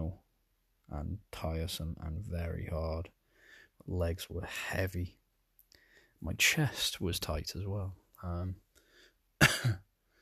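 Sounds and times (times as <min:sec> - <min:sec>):
speech: 0:00.9 - 0:03.2, 0:03.8 - 0:05.2, 0:06.2 - 0:08.6, 0:09.4 - 0:09.8
faint breathing: 0:03.1 - 0:03.9, 0:05.6 - 0:06.3, 0:08.6 - 0:09.4, 0:10.0 - 0:10.2
person coughing: 0:09.4 - 0:09.9.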